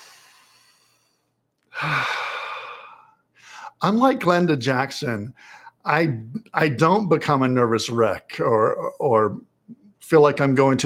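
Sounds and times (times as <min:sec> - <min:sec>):
person leading a Sunday gathering taking a deep breath: 0:00.0 - 0:03.8
speech: 0:03.8 - 0:10.8.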